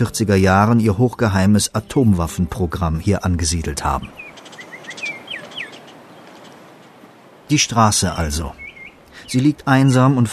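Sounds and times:
speech: 0.0 - 4.2, 7.5 - 8.6, 9.3 - 10.3
birds chirping beside a remote mountain road in New Mexico: 0.0 - 10.3
crickets on a remote New Mexico mountain road: 4.1 - 9.4.

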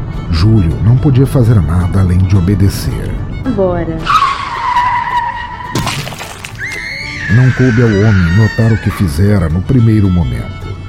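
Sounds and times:
speech: 0.4 - 4.2, 7.3 - 10.6
car tires screeching in a skid: 4.0 - 5.8, 6.6 - 9.4
shattering and clattering debris: 5.7 - 6.9
high squeal: 6.6 - 9.0.

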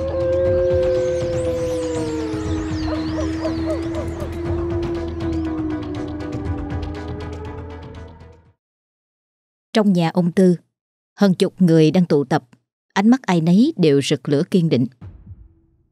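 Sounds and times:
dogs howling together at night in a village: 0.0 - 7.8
speech: 9.8 - 10.6, 11.2 - 15.1.

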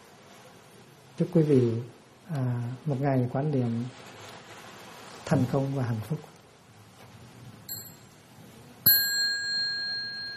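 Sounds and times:
speech: 1.2 - 4.2, 5.3 - 6.3
bell rung during Buddhist mindfulness meditation practice: 7.7 - 8.2, 8.9 - 10.3.

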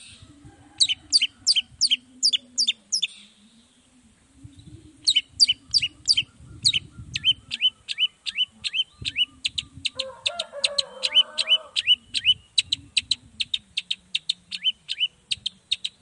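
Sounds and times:
long-tailed shrike singing morning song: 0.8 - 3.4, 4.6 - 16.0.

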